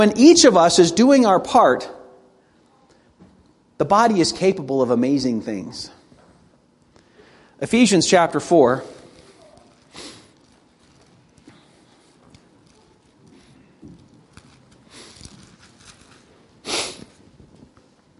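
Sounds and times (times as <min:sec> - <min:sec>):
speech: 0:00.0 - 0:02.0, 0:03.8 - 0:06.0, 0:07.6 - 0:09.0
person with a head cold sniffing through a congested nose: 0:09.0 - 0:10.4, 0:16.6 - 0:17.2.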